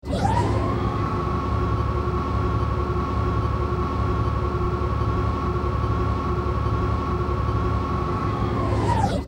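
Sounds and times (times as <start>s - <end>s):
turbolift: 0.0s - 9.2s.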